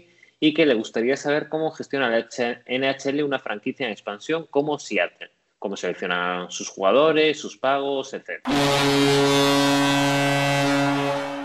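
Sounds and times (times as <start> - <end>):
speech: 0.4 - 9.4
hockey arena goal horn blaring: 8.5 - 11.4.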